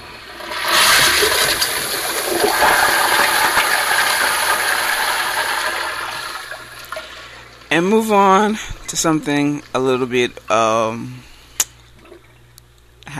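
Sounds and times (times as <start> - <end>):
toilet flushing: 0.0 - 10.4
speech: 7.7 - 11.3.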